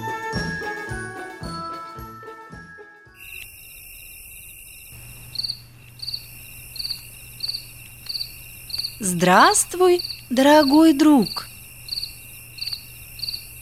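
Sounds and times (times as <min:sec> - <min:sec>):
high-pitched rhythmic cricket chirping: 0:03.2 - 0:13.6
brief spoken greeting: 0:09.0 - 0:11.5
speech: 0:09.5 - 0:11.5.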